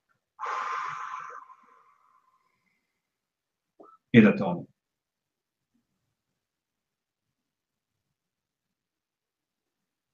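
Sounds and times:
slow exhale during a guided breathing exercise: 0:00.4 - 0:03.1
speech: 0:04.1 - 0:04.7.

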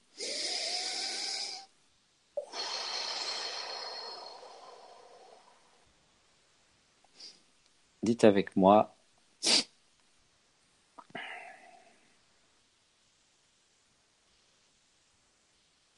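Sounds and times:
person taking a deep breath in and out: 0:00.0 - 0:01.7, 0:02.4 - 0:05.9, 0:11.0 - 0:12.1
speech: 0:08.0 - 0:09.6.

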